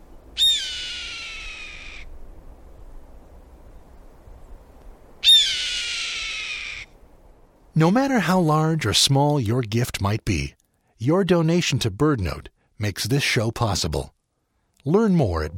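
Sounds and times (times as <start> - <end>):
red-tailed hawk hoarse downward-sliding scream: 0.4 - 2.1, 5.2 - 6.9
speech: 7.8 - 14.2, 14.8 - 15.5.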